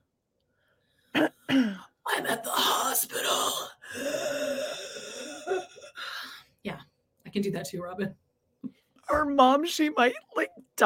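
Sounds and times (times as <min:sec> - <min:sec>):
person coughing: 0:01.1 - 0:03.7
speech: 0:07.4 - 0:10.8.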